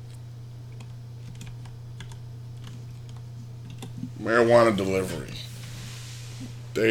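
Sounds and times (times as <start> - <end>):
steady low hum: 0.0 - 6.8
keyboard typing as a search query is entered: 0.7 - 4.0
speech: 4.2 - 5.5.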